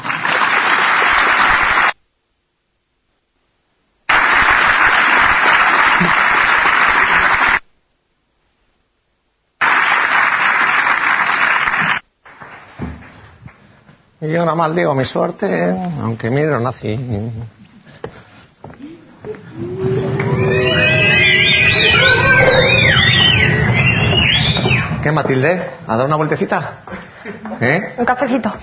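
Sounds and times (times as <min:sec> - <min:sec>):
audience applause at the end of a talk: 0:00.0 - 0:02.0, 0:04.1 - 0:07.6, 0:09.6 - 0:13.2, 0:19.5 - 0:25.1
speech: 0:14.2 - 0:17.6, 0:25.0 - 0:26.9, 0:27.6 - 0:28.6
scattered noise: 0:19.4 - 0:25.1.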